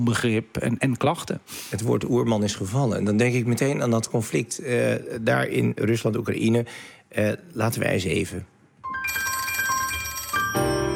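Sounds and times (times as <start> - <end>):
speech: 0.0 - 8.6
telephone ringing as a call is placed: 8.8 - 10.9.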